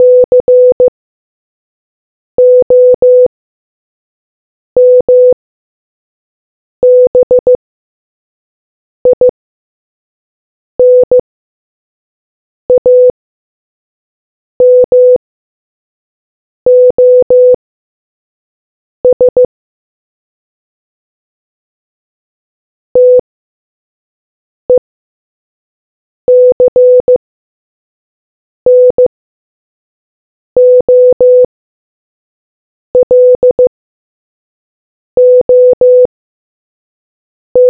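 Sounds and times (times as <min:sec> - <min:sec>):
morse code beeps: 0:00.0 - 0:00.9, 0:02.4 - 0:03.3, 0:04.8 - 0:05.4, 0:06.8 - 0:07.6, 0:09.1 - 0:09.3, 0:12.7 - 0:13.1, 0:14.6 - 0:15.2, 0:16.7 - 0:17.6, 0:19.1 - 0:19.5, 0:23.0 - 0:23.2, 0:26.3 - 0:27.2, 0:28.7 - 0:29.1, 0:30.6 - 0:31.5, 0:33.0 - 0:33.7, 0:35.2 - 0:36.1.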